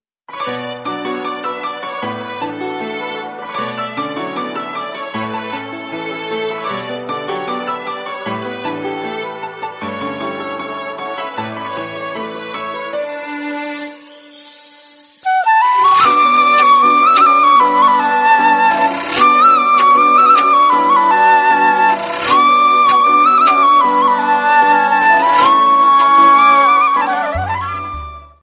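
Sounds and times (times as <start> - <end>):
instrumental ringtone of a female song: 13.8 - 28.2.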